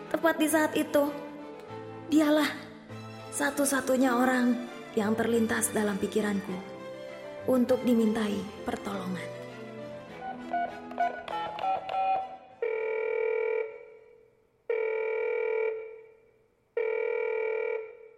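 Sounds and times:
music: 0.0s - 12.6s
speech: 0.1s - 1.2s, 2.1s - 2.6s, 3.3s - 6.7s, 7.4s - 9.4s
telephone ringing in long electronic bursts: 11.7s - 16.2s, 16.8s - 18.1s.

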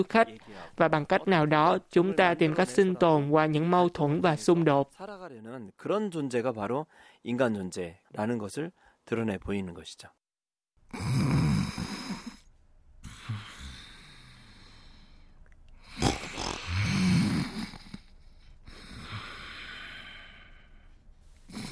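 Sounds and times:
speech: 0.0s - 10.2s
sleeping man snoring: 10.9s - 15.0s, 15.8s - 20.7s, 21.5s - 21.6s.

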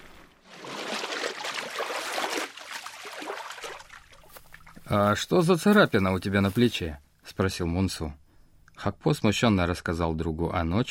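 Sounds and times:
water flowing in a stream: 0.0s - 5.1s
speech: 4.9s - 8.2s, 8.8s - 10.8s.

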